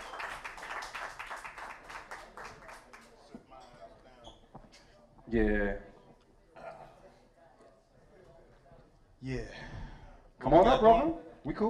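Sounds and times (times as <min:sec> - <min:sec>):
audience clapping: 0:00.0 - 0:03.3
speech: 0:05.3 - 0:05.9, 0:09.2 - 0:09.6, 0:10.4 - 0:11.6.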